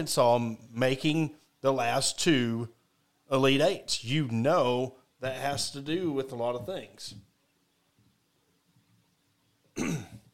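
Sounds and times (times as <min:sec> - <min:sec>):
speech: 0:00.0 - 0:07.3
person coughing: 0:09.8 - 0:10.3.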